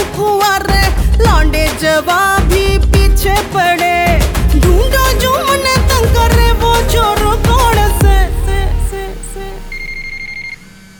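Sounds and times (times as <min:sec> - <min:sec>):
low musical backdrop: 0:00.0 - 0:09.9
telephone ringing with electronic tones: 0:09.7 - 0:10.9.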